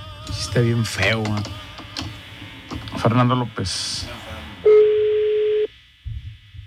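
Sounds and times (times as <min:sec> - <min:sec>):
speech: 0:00.5 - 0:01.6, 0:03.0 - 0:04.2
telephone ring tone from an outgoing call over the line: 0:04.7 - 0:05.7.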